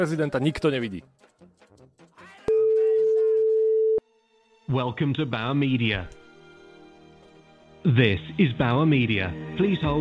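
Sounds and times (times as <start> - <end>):
speech: 0.0 - 1.6, 4.7 - 6.2, 7.8 - 9.9
telephone ringing tone beep during a call: 2.5 - 4.0.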